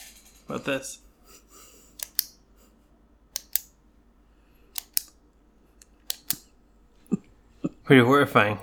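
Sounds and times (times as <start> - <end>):
speech: 0.5 - 1.0, 7.9 - 8.6
pen clicking: 2.0 - 2.4, 3.4 - 3.7, 4.8 - 5.2, 6.0 - 6.4.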